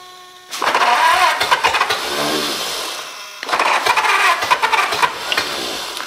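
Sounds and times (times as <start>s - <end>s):
choked engine starting and revving with fire from its exhaust: 0.5s - 6.0s.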